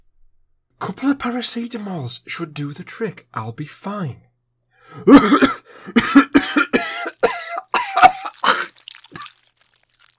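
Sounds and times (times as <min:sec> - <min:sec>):
speech: 0:00.8 - 0:04.3, 0:04.9 - 0:06.2
heavy wet coughing, coughing something up: 0:04.9 - 0:09.4.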